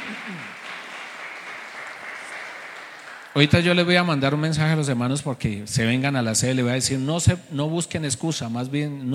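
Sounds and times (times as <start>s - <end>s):
congregation applauding: 0.0s - 3.8s
speech: 0.3s - 0.6s, 3.4s - 9.1s.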